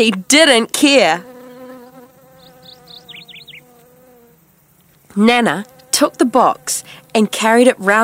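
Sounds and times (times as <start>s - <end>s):
speech: 0.0s - 1.3s, 5.2s - 8.0s
bees buzzing around a person's hat: 0.3s - 8.0s
high quick chirps: 2.4s - 3.7s.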